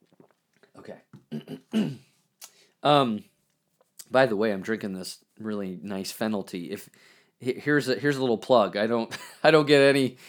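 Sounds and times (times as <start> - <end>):
person clearing throat: 1.2 - 2.1
speech: 1.8 - 2.0, 2.8 - 3.3, 4.1 - 10.2.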